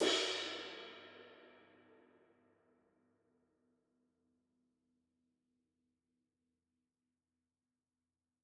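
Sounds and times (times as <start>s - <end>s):
crash cymbal: 0.0s - 1.7s.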